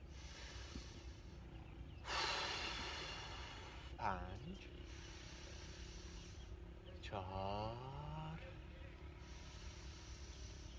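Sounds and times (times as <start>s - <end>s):
long deep breath during a breathing exercise: 0.0s - 1.4s, 2.0s - 4.0s, 4.8s - 6.6s, 9.1s - 10.7s
speech: 4.0s - 5.2s, 7.1s - 8.0s.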